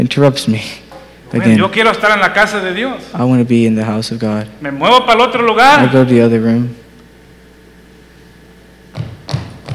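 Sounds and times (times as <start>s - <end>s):
speech: 0.0s - 6.8s
heavy aggressive stomping footsteps with scuffing: 8.9s - 9.7s.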